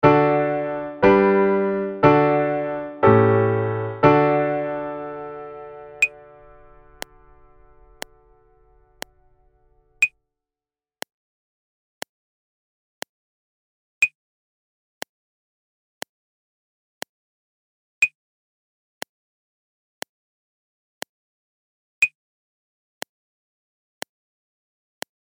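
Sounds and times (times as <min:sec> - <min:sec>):
music in D major without piano: 0:00.0 - 0:10.1.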